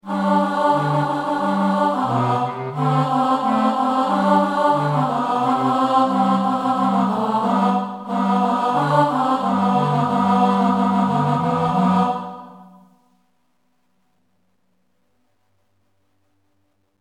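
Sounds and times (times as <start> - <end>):
alto choir singing: 0.0 - 12.9.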